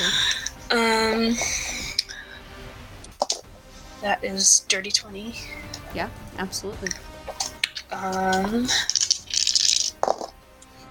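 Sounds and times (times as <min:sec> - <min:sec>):
speech: 0:00.7 - 0:01.6, 0:04.0 - 0:07.1, 0:08.0 - 0:09.0
dice clattering across a hard tabletop: 0:08.8 - 0:10.4.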